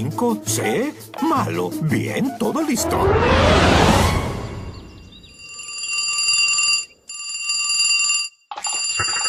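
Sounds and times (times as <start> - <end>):
speech: 0.0 - 4.1
brief loud rush of noise as a call goes through: 2.8 - 5.0
telephone ringing with a buzzing electronic trill: 5.2 - 9.2.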